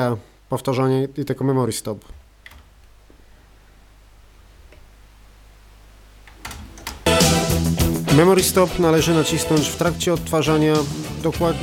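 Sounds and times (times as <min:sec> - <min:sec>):
speech: 0:00.0 - 0:02.2, 0:08.2 - 0:11.6
cassette deck buttons clicking: 0:06.2 - 0:07.1.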